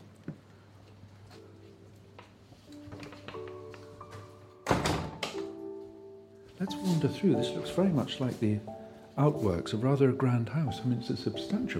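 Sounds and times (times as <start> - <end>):
green side-entrance door of a stone building slamming shut: 4.6 - 5.4
speech: 6.6 - 11.7.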